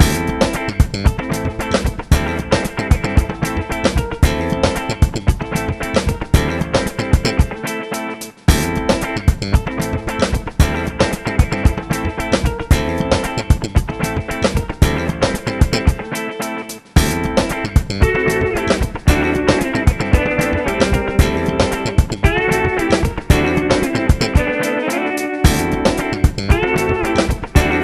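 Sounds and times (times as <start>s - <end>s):
party funk music: 0.0s - 27.8s.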